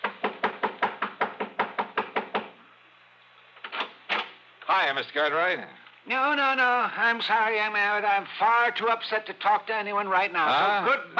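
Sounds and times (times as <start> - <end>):
heavy pounding knocks on a home's front door in Lakewood: 0.0 - 2.6
speech: 4.7 - 11.1.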